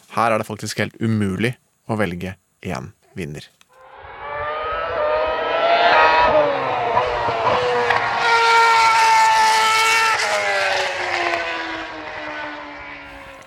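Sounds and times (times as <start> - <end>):
speech: 0.2 - 3.6
Formula 1 racing car engines whining past: 3.8 - 13.4.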